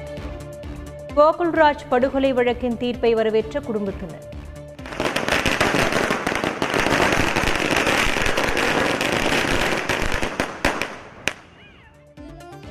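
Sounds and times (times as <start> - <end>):
speech: 1.1 - 4.3
string of firecrackers bursting in celebration of a murder case verdict: 4.8 - 11.6.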